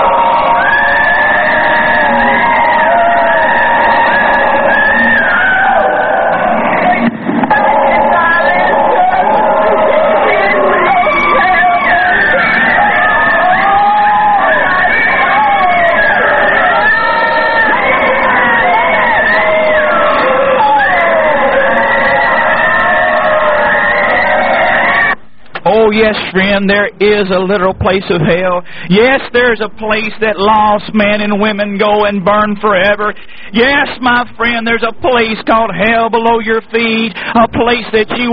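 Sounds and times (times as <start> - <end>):
many human voices screaming and wailing: 0.0 - 25.8
speech: 26.0 - 38.3.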